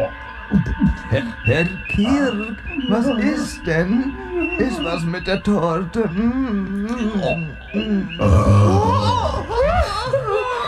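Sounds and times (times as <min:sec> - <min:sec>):
speech: 0:00.5 - 0:10.2
laughter: 0:00.5 - 0:10.6
loud deep guttural burp: 0:08.2 - 0:09.3.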